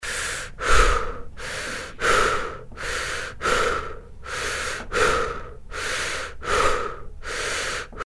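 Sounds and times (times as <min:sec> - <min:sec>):
person breathing: 0:00.0 - 0:08.0.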